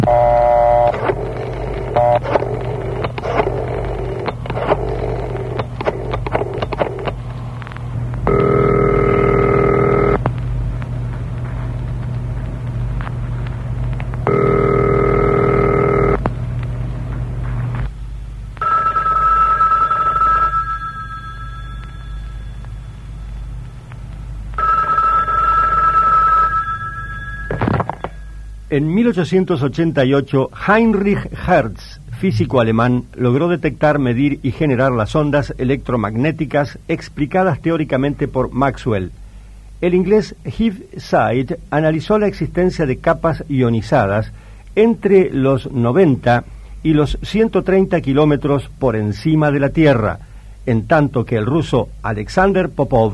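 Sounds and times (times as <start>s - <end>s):
telephone bell ringing: 0.0s - 7.1s, 8.3s - 10.2s, 14.3s - 16.2s, 18.6s - 23.1s, 24.6s - 28.6s
clattering mechanical noise: 0.0s - 18.8s
steady low hum: 0.0s - 29.2s
speech: 28.8s - 39.2s, 39.8s - 53.1s.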